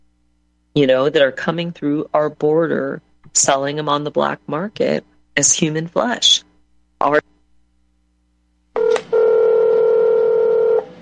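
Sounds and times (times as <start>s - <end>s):
speech: 0.8s - 6.4s, 7.0s - 7.3s
telephone keypad tones: 8.8s - 10.9s.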